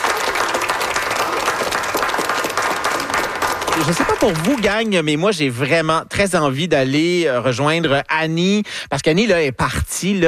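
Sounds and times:
crowd applauding: 0:00.0 - 0:05.0
speech: 0:03.8 - 0:10.2.

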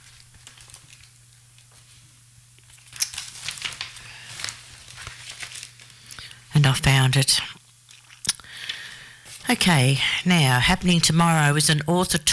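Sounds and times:
paper rustling and crinkling while searching a desk: 0:00.0 - 0:06.2
steady low electrical hum: 0:00.0 - 0:12.3
speech: 0:06.6 - 0:07.6, 0:09.5 - 0:12.3.

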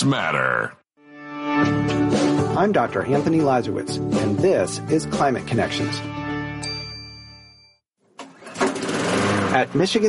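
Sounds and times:
speech: 0:00.0 - 0:00.8, 0:01.6 - 0:06.2, 0:09.6 - 0:10.0
ringing chime-like tone: 0:06.6 - 0:07.8
small lawnmower engine sputtering and roaring: 0:08.2 - 0:09.9.

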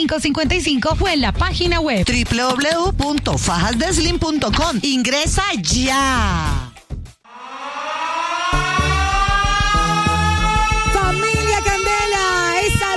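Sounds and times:
speech: 0:00.0 - 0:06.6
thumping rhythmic beat: 0:00.5 - 0:05.4, 0:08.5 - 0:12.9
loud siren wailing: 0:07.3 - 0:12.9.

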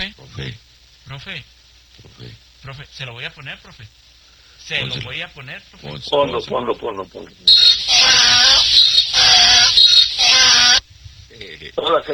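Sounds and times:
speech: 0:00.1 - 0:04.0, 0:04.6 - 0:07.7, 0:11.4 - 0:12.1
donkey braying: 0:07.5 - 0:10.8.

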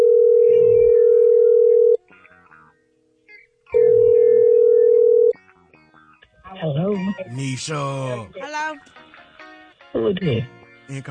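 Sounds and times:
telephone line tone as a call is placed: 0:00.0 - 0:02.0, 0:03.8 - 0:05.4
speech: 0:07.4 - 0:09.1, 0:09.9 - 0:11.1.

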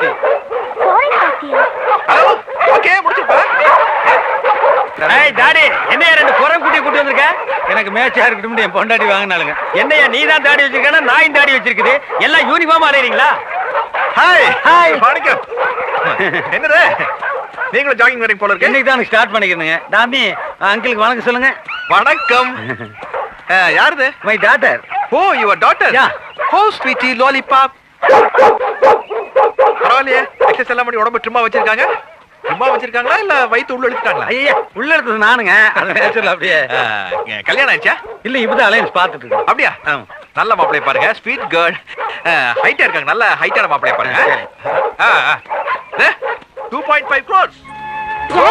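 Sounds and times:
new dog barking and whimpering while pulling: 0:00.0 - 0:18.0, 0:18.6 - 0:27.3, 0:27.9 - 0:34.8, 0:35.7 - 0:48.5
speech: 0:07.0 - 0:13.5, 0:14.2 - 0:29.1, 0:29.8 - 0:48.5
laughter: 0:15.8 - 0:17.4, 0:22.1 - 0:23.3.

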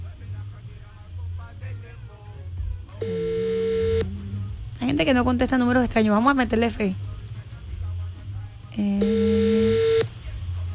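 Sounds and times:
faint noise: 0:00.0 - 0:10.7
speech: 0:03.0 - 0:03.3, 0:05.0 - 0:07.0
steady electronic tone of a telephone call being dialed: 0:03.0 - 0:04.5, 0:09.0 - 0:10.2.

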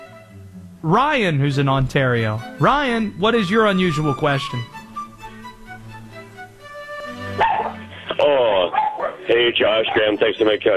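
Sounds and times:
speech: 0:00.8 - 0:04.7, 0:09.4 - 0:10.7
female dog barking: 0:07.3 - 0:07.9, 0:08.6 - 0:10.2
female dog whining: 0:07.3 - 0:07.9.

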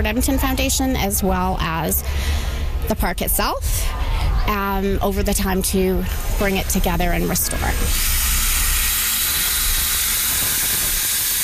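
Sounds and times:
speech: 0:00.0 - 0:08.2
steam train hissing: 0:06.0 - 0:11.4.

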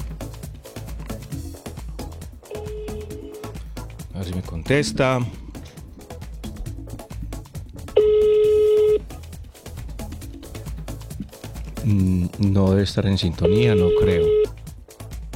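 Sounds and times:
speech: 0:04.2 - 0:05.4, 0:11.9 - 0:14.5
phone dialing tones while placing a call: 0:07.9 - 0:09.0, 0:13.4 - 0:14.6.

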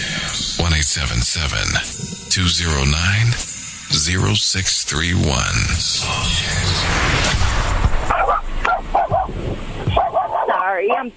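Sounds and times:
rushing noise: 0:00.0 - 0:10.4
hissy background: 0:00.0 - 0:11.1
speech: 0:00.8 - 0:07.4, 0:10.7 - 0:11.1
dog in a car barking in short high yips: 0:08.1 - 0:09.3, 0:09.9 - 0:11.1.

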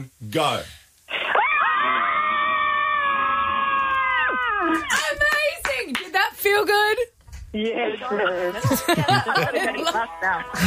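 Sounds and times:
speech: 0:00.0 - 0:00.8, 0:04.7 - 0:05.3, 0:06.5 - 0:10.6
group of women screaming together on a count of three: 0:01.3 - 0:04.9
laughter: 0:08.5 - 0:10.6.

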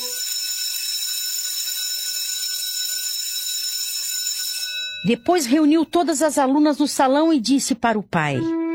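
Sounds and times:
school bell ringing: 0:00.0 - 0:06.0
speech: 0:05.0 - 0:08.6.

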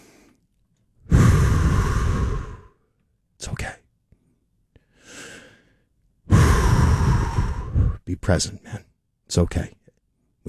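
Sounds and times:
long deliberate exhale: 0:01.1 - 0:02.8, 0:04.9 - 0:08.0
speech: 0:08.1 - 0:09.8.

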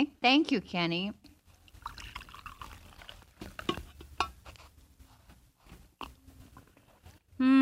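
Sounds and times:
speech: 0:00.0 - 0:01.2, 0:07.4 - 0:07.6
coffee pouring into a cup: 0:01.6 - 0:03.8.

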